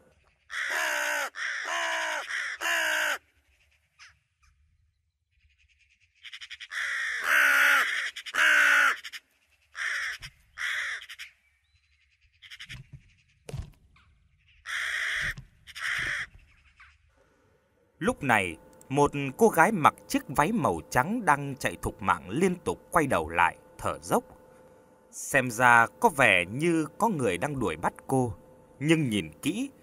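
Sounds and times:
large bird crying in a deep forest at night: 0:00.0 - 0:04.2, 0:06.2 - 0:11.5, 0:12.2 - 0:13.4, 0:14.4 - 0:17.1
speech: 0:18.2 - 0:24.4, 0:25.2 - 0:29.8.

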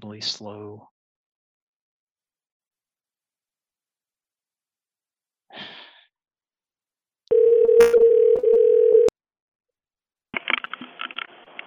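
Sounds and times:
soft breathy sigh: 0:05.5 - 0:06.1
telephone dial tone: 0:07.3 - 0:09.1.

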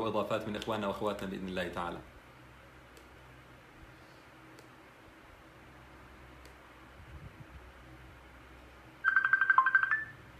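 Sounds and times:
speech: 0:00.1 - 0:02.2
phone ringing with an incoming Messenger call: 0:09.0 - 0:10.3.

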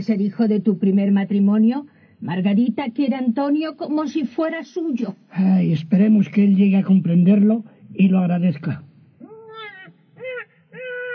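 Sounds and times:
speech: 0:00.0 - 0:08.9
newborn baby crying: 0:09.2 - 0:11.1.

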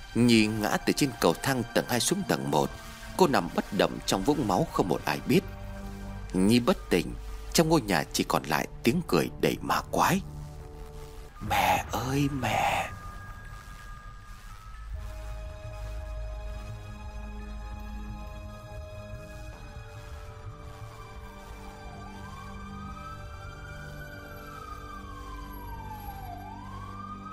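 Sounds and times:
speech: 0:00.1 - 0:05.4, 0:06.3 - 0:10.3, 0:11.4 - 0:12.9
ambulance siren wailing: 0:11.4 - 0:13.7, 0:20.1 - 0:27.3.

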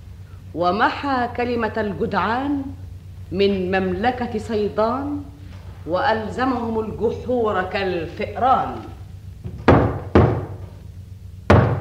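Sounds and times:
speech: 0:00.5 - 0:08.9
heavy knocking on a door: 0:09.4 - 0:10.7, 0:11.5 - 0:11.7.

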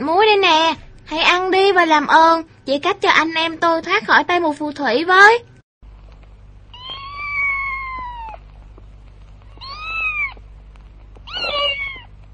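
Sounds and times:
speech: 0:00.0 - 0:05.5
cat meowing: 0:06.7 - 0:08.4, 0:09.4 - 0:10.4, 0:11.2 - 0:12.2.

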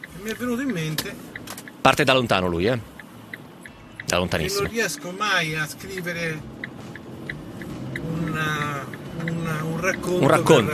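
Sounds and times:
car hazard lights ticking inside a car: 0:00.0 - 0:10.7
low car engine and road rumble: 0:00.0 - 0:10.7
speech: 0:00.2 - 0:02.9, 0:04.1 - 0:06.6, 0:09.8 - 0:10.7.

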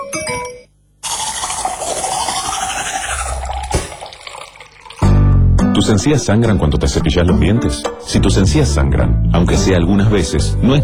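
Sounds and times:
cola fizzing as it is poured: 0:01.0 - 0:05.2
pouring gurgles: 0:01.0 - 0:05.2
speech: 0:05.8 - 0:10.8.

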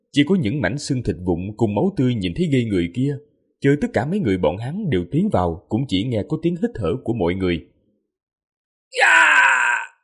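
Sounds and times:
speech: 0:00.2 - 0:07.7, 0:08.9 - 0:09.2
miserable shrieking human wail: 0:08.9 - 0:10.0.

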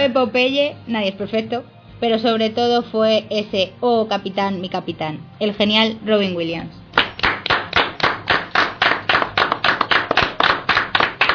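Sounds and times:
speech: 0:00.0 - 0:06.8
people clapping hands in applause as a tribute: 0:06.9 - 0:11.3.

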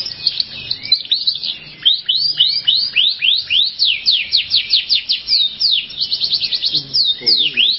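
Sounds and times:
canary song: 0:00.0 - 0:07.7.

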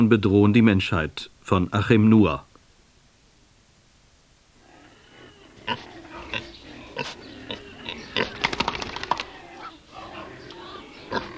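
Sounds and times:
speech: 0:00.0 - 0:02.5, 0:05.7 - 0:05.9
pigs grunting and squealing in a pigsty: 0:04.6 - 0:08.5, 0:09.1 - 0:11.3.

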